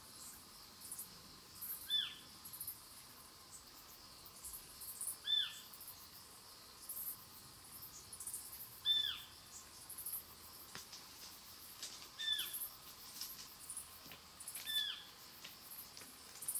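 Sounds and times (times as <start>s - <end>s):
Otus scops owl alarm call: 12.2s - 12.6s, 14.6s - 15.1s.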